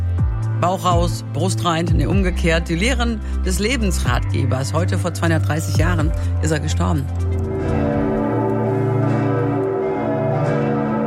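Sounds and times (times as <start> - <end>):
speech: 0.6 - 7.8
cathedral church bells ringing a full peal: 7.5 - 11.0.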